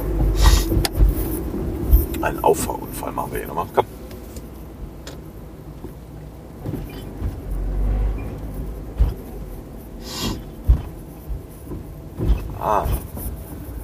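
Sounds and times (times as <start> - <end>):
car engine rumble driving through busy road traffic beside a truck: 0.0 - 13.8
higher whine or squeal from other vehicles: 0.0 - 13.8
thumps and bumps: 0.0 - 13.8
speech: 2.2 - 3.9.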